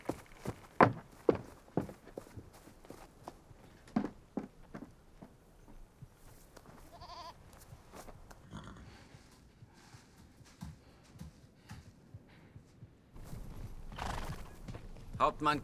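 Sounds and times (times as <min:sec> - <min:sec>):
hooves clopping on hard ground: 0:00.0 - 0:15.6
rustling busy farmyard background: 0:00.0 - 0:15.6
horse whinnying: 0:13.8 - 0:14.6
speech: 0:15.2 - 0:15.6.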